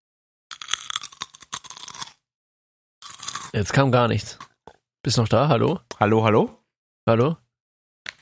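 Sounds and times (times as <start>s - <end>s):
crunching of crispy peanut chips: 0.5s - 2.2s, 3.0s - 3.6s
speech: 3.5s - 4.4s, 5.0s - 7.4s.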